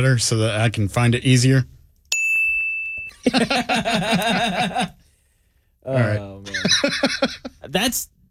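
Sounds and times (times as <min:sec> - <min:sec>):
speech: 0:00.0 - 0:01.8, 0:03.2 - 0:05.0, 0:05.8 - 0:08.1
bright high bell ding: 0:02.1 - 0:03.3
laughter: 0:03.2 - 0:05.0, 0:06.4 - 0:07.6.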